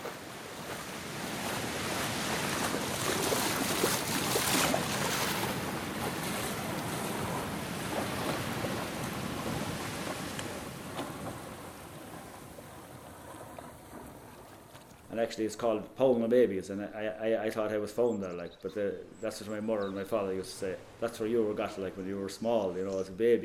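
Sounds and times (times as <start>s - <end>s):
rough sea waves crashing and surging: 0.0s - 15.2s
speech: 15.2s - 23.4s.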